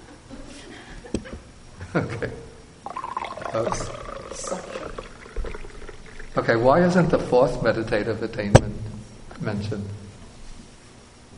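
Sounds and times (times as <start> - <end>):
speech: 2.0 - 2.4, 3.6 - 4.0, 6.5 - 8.8, 9.4 - 10.0
tea pouring into a cup: 2.9 - 7.0.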